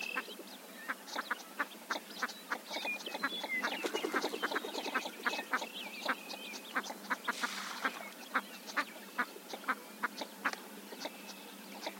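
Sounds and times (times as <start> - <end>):
northern shoveler clucking calls: 0.9 - 11.9.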